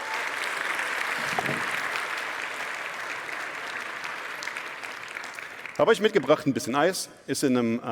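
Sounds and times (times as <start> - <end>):
crowd clapping: 0.0 - 6.2
speech: 5.8 - 7.9.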